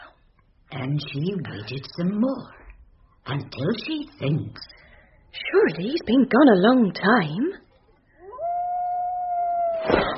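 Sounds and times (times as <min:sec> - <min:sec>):
speech: 0:00.7 - 0:02.6, 0:03.2 - 0:07.6
canine long-drawn wavering howl: 0:08.2 - 0:10.0.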